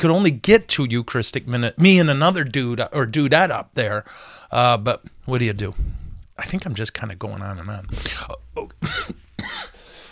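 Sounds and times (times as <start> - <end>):
speech: 0.0 - 9.7
person coughing: 8.0 - 9.9.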